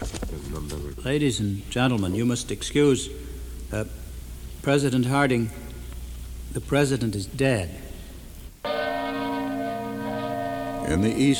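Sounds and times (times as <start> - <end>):
speech: 0.6 - 4.0, 4.6 - 5.6, 6.5 - 7.8, 10.9 - 11.3
bell of a Congregational church in Plymouth Vermont tolling the hour: 8.6 - 11.3.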